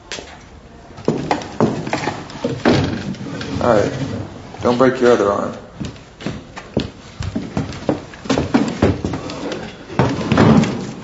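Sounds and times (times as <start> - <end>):
wooden chair being shifted into place with hollow knocks and thumps: 1.0 - 4.3, 5.8 - 11.0
speech: 3.6 - 5.6.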